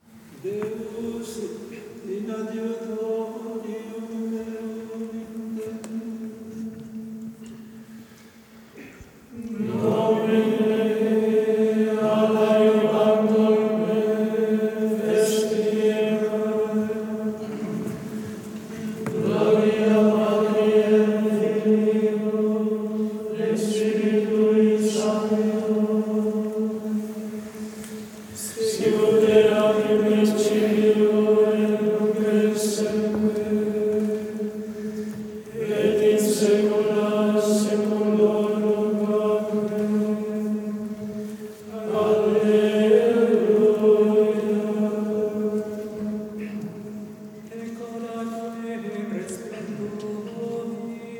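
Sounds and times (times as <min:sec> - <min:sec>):
binaural Catholic Gregorian chant at a mass liturgy: 0:00.0 - 0:08.0, 0:09.3 - 0:51.1.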